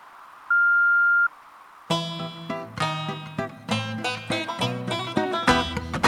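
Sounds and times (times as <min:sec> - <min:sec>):
faint hiss: 0:00.0 - 0:03.8
answering-machine beep: 0:00.5 - 0:01.3
bright full-band music: 0:01.9 - 0:06.0.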